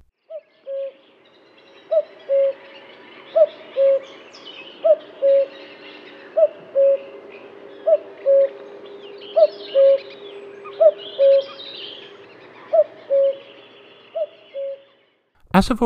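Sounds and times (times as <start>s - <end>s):
faint birdsong twittering: 0.2s - 15.3s
common cuckoo calling its two-note cu-coo: 0.3s - 15.0s
speech: 15.6s - 15.8s.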